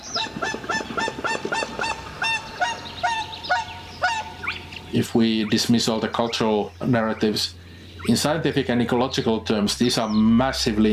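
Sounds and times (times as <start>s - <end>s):
whooper swans whooping at a rewilding site: 0.0s - 6.2s
spotted crake calling: 0.0s - 10.9s
speech: 4.9s - 10.9s.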